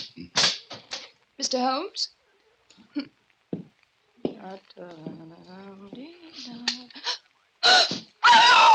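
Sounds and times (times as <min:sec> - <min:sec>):
speech: 0:01.4 - 0:02.2, 0:02.9 - 0:03.2, 0:04.4 - 0:08.0
woman letting out strained wavering cries: 0:07.6 - 0:08.7
woman screaming: 0:07.6 - 0:08.7.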